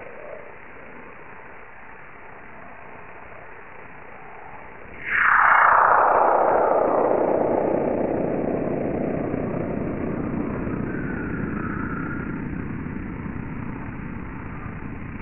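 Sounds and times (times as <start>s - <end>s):
type 3 solar radio burst: 5.0s - 15.2s.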